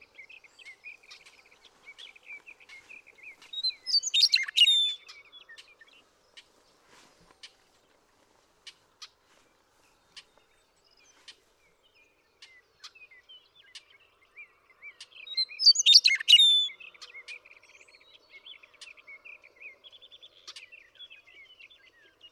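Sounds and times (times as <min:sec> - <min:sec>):
Western meadowlark singing: 0:00.0 - 0:06.0, 0:12.4 - 0:22.3
soft bird chirps and short tweets: 0:00.0 - 0:22.3.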